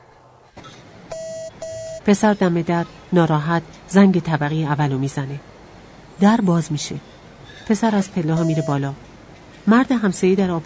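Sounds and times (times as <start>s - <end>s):
telephone ringing with an electronic beep-like tone: 1.1s - 2.0s, 8.4s - 8.9s
speech: 2.0s - 5.5s, 6.2s - 10.6s.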